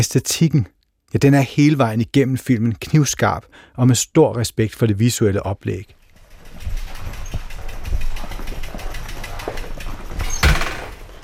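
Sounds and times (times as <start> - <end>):
speech: 0.0 - 6.0
motorcycle engine running with a low rumble: 5.9 - 11.2.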